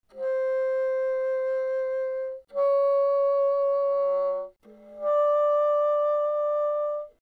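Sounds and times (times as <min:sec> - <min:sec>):
soft bassoon notes C5 and D5: 0:00.1 - 0:07.2.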